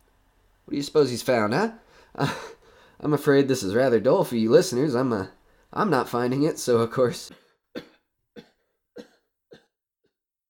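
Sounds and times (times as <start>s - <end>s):
speech: 0.7s - 7.9s
person coughing harshly: 7.3s - 9.7s.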